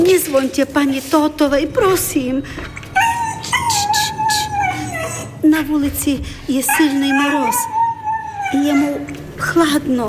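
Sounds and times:
speech: 0:00.1 - 0:02.8, 0:05.4 - 0:07.8, 0:08.5 - 0:10.0
dog left out on a freezing street whining and howling: 0:02.9 - 0:05.5, 0:06.6 - 0:09.2.

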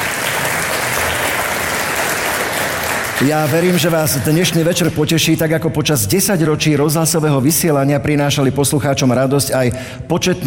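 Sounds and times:
audience applause: 0:00.0 - 0:04.0
speech: 0:03.2 - 0:10.4.

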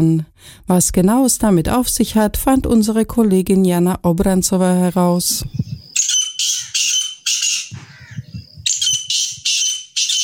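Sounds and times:
speech: 0:00.0 - 0:05.7
grey partridge giving harsh rasping calls: 0:05.7 - 0:10.2.

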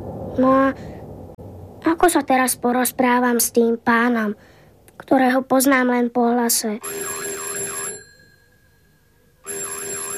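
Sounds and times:
speech: 0:00.4 - 0:01.0, 0:01.9 - 0:07.3
doorbell ringing with warbling electronic tone: 0:06.8 - 0:10.1.

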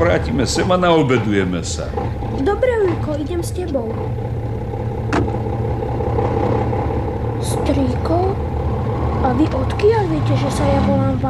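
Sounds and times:
speech: 0:00.0 - 0:04.5, 0:07.4 - 0:08.4, 0:09.2 - 0:11.2
car engine idling: 0:00.0 - 0:11.2.

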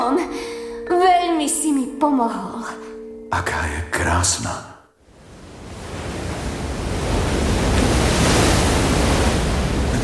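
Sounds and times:
speech: 0:00.2 - 0:00.5, 0:01.4 - 0:04.7
big ocean wave at high tide crashing against rocks in front of a cave: 0:05.2 - 0:10.0.

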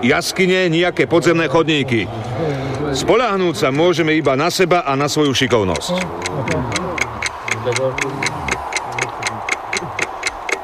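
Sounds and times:
speech: 0:00.0 - 0:06.8, 0:07.6 - 0:08.4
alarm clock ticking: 0:05.2 - 0:10.6.

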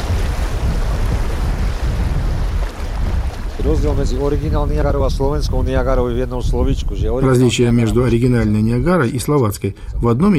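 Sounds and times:
rushing river water approaching rapids: 0:00.0 - 0:05.8
speech: 0:03.7 - 0:10.3.

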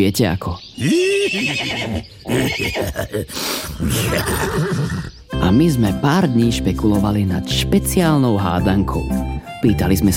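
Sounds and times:
speech: 0:00.0 - 0:10.1
horse neighing: 0:00.8 - 0:05.3.

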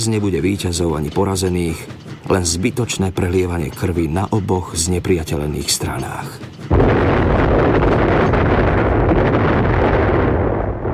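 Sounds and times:
speech: 0:00.0 - 0:07.8
distant artillery rumbling with dull booms and bursts: 0:06.6 - 0:10.9.

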